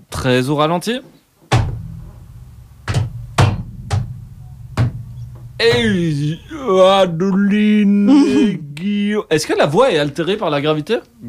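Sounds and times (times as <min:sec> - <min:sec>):
speech: 0:00.2 - 0:01.2, 0:05.6 - 0:11.2
heavy metallic clunks: 0:01.5 - 0:07.5
low rumble: 0:01.6 - 0:08.0.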